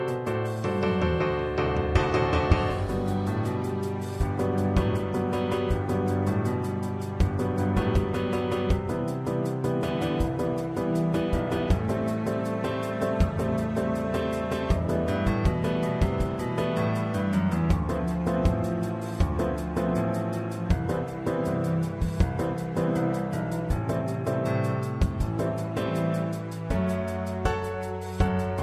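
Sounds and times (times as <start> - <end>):
cello karaoke track: 0.2 - 28.6.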